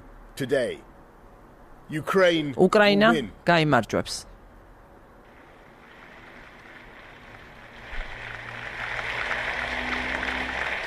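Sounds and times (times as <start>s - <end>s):
speech: 0.4s - 0.9s, 1.9s - 4.3s
parliament members applauding with a standing ovation: 5.8s - 10.8s.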